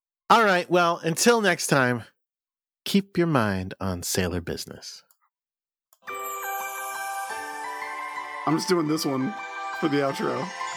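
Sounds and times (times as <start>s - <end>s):
speech: 0.3s - 2.1s, 2.8s - 5.1s, 8.5s - 10.7s
church bells ringing a melodic pattern: 6.1s - 10.7s.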